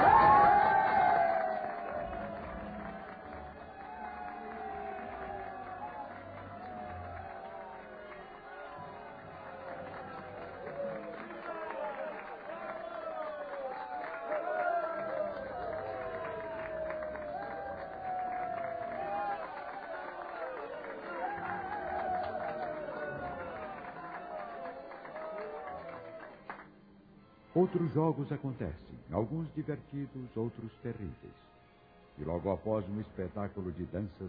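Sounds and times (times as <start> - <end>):
large arena crowd cheering and roaring: 0.0 - 26.7
speech: 27.6 - 31.5, 32.2 - 34.2.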